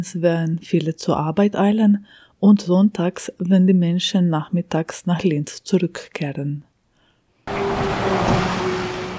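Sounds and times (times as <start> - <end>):
speech: 0.0 - 6.7
motor vehicle engine passing by: 7.5 - 9.1.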